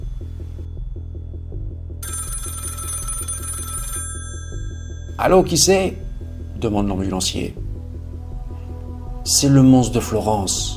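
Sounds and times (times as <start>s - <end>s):
telephone bell ringing at night: 2.0s - 5.7s
speech: 5.2s - 6.0s, 6.6s - 7.6s, 9.3s - 10.7s.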